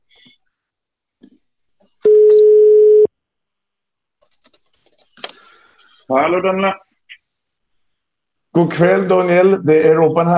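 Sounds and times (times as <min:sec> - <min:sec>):
steady telephone ringing tone over the line: 0:02.1 - 0:03.1
speech: 0:06.1 - 0:06.8, 0:08.6 - 0:10.3.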